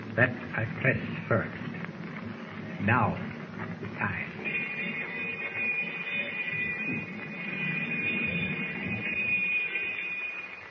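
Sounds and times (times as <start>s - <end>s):
speech: 0.2s - 1.6s, 2.8s - 4.3s
submarine warning bell ringing before torpedo fire: 4.3s - 10.6s.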